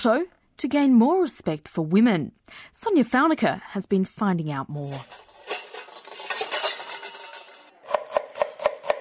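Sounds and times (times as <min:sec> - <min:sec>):
speech: 0:00.0 - 0:05.2
pots and pans clattering and scraping in a kitchen: 0:04.8 - 0:08.9.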